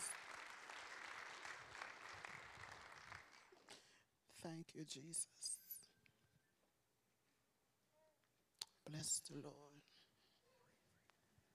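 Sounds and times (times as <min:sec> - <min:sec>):
large crowd clapping to welcome a woman speaker: 0:00.0 - 0:03.8
speech: 0:04.4 - 0:05.6, 0:08.9 - 0:10.1.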